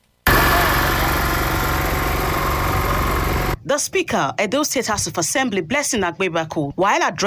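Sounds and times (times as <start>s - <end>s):
heavy road cutting and drilling machinery engine roaring: 0.3s - 3.6s
rough vibrating rattle of road machinery: 0.3s - 3.6s
speech: 3.7s - 7.2s.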